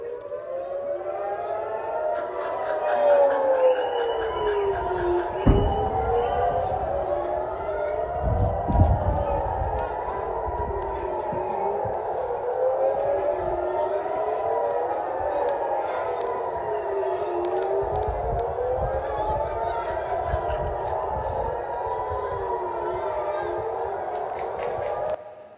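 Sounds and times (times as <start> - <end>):
air raid warning sirens wailing in Israel during an attack by Iran: 0.0 - 25.5
low thuds and rumbles: 4.9 - 10.8.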